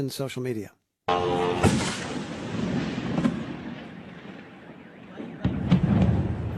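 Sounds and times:
speech: 0.0s - 2.0s
sharp explosion blasts: 1.4s - 6.5s.

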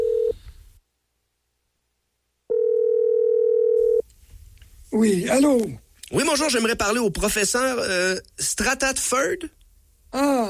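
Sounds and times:
telephone ringing on the line: 0.0s - 0.4s, 2.5s - 4.0s
speech: 5.0s - 10.4s.

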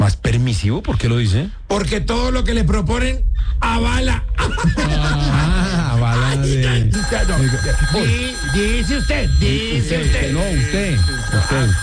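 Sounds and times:
speech: 0.5s - 11.8s
laughter: 4.3s - 8.0s
telephone bell ringing loudly: 6.9s - 11.8s.

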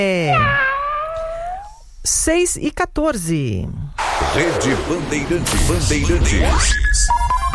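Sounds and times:
speech: 0.0s - 0.6s, 2.0s - 7.4s
cat meowing: 0.0s - 1.8s.

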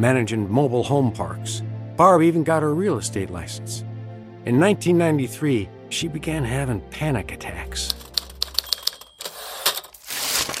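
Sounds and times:
speech: 0.0s - 8.0s
typewriter keys striking paper while typing leases: 7.9s - 10.5s.

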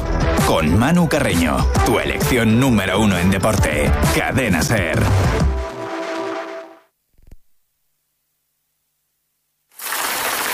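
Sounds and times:
speech: 0.5s - 5.6s
rain falling: 9.7s - 10.5s.

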